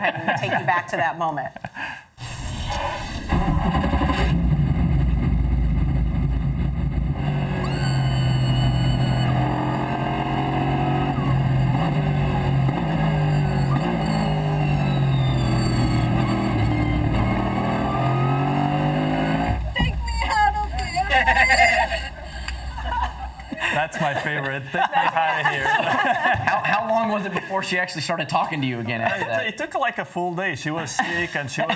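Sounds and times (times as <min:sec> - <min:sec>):
laughter: 0:00.0 - 0:00.8, 0:19.8 - 0:27.8, 0:28.5 - 0:29.6, 0:30.8 - 0:31.7
speech: 0:00.0 - 0:04.4, 0:23.8 - 0:31.7
car engine revving while driven fast through gears: 0:02.2 - 0:23.6.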